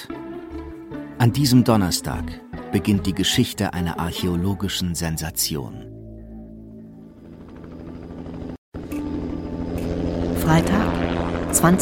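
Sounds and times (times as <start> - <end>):
speech: 1.2 - 6.0, 10.5 - 11.0, 11.6 - 11.8
helicopter carrying a recovery team coming in to land: 3.8 - 11.8.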